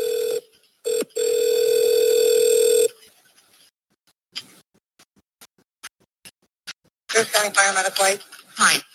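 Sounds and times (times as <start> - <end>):
telephone ringing tone during call transfer: 0.0 - 3.0
speech: 7.2 - 8.9.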